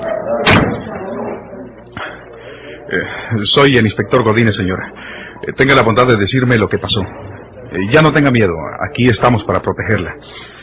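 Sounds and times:
faint murmur: 0.0 - 10.6
door slamming shut: 0.4 - 1.0
speech: 2.9 - 10.6.

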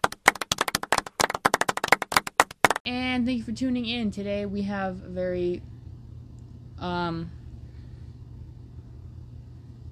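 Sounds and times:
applause: 0.0 - 2.8
speech: 3.2 - 5.7, 6.8 - 7.4.

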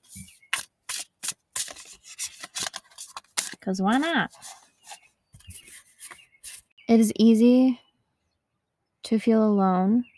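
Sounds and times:
tarot oracle card deck shuffled by hand: 0.0 - 6.6
speech: 3.6 - 4.5, 6.9 - 7.8, 9.1 - 10.1.

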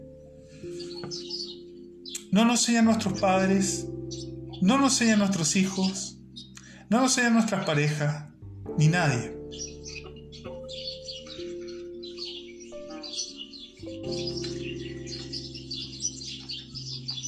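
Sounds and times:
small birds chirping: 0.0 - 17.2
speech: 2.3 - 4.0, 4.6 - 6.2, 6.9 - 9.6.

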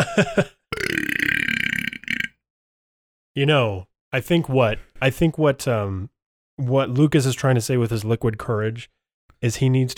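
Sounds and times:
speech: 0.0 - 0.6, 3.4 - 9.9
throaty sound: 0.7 - 2.4
weak rattly burp: 0.7 - 2.4.

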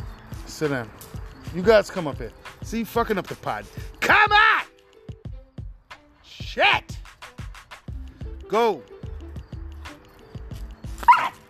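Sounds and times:
speech: 0.6 - 4.5, 8.5 - 8.9
two dogs barking and yipping: 10.8 - 11.4
dog high-pitched yelp: 11.0 - 11.4.

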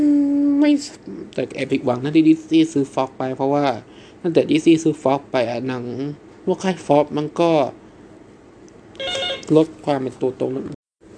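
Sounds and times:
speech: 0.6 - 7.8, 9.0 - 10.8
phone electronic ringtone from incoming call: 9.0 - 9.5.

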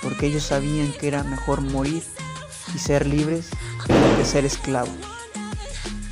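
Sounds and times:
speech: 0.1 - 5.2
firecracker blast outside: 3.9 - 4.7.

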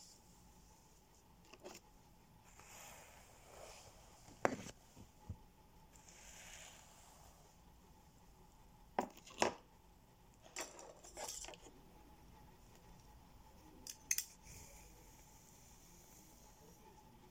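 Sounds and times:
faint steady hum: 0.0 - 17.3
hair being brushed: 2.4 - 4.8, 5.9 - 7.5.

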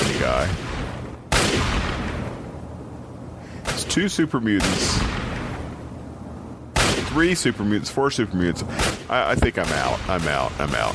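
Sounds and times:
video game laser rifle blast: 0.0 - 2.5, 4.6 - 5.8, 6.7 - 7.6, 8.7 - 10.9
speech: 0.2 - 0.7, 4.0 - 5.2, 7.2 - 10.9.

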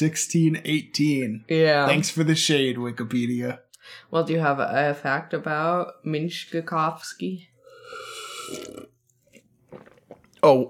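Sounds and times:
speech: 0.0 - 8.9, 9.7 - 10.6
drawn-out slurp of hot mustard water: 7.6 - 10.4
swallowing: 7.6 - 10.6.

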